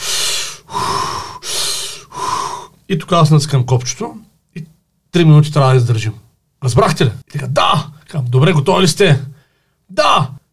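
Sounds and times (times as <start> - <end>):
heavy forceful breathing imitating feet in ice-cold water: 0.0 - 2.8
speech: 2.9 - 9.3, 9.9 - 10.4.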